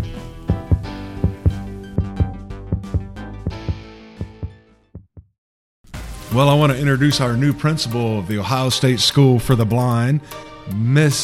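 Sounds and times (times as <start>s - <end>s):
heartbeat sound effect thumping in double pulses: 0.5s - 5.3s
speech: 6.3s - 11.2s.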